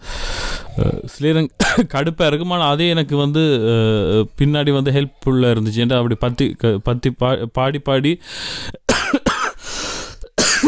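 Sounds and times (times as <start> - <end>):
speech: 0.8 - 9.2
person coughing harshly: 1.6 - 1.9, 8.9 - 9.6, 10.3 - 10.6.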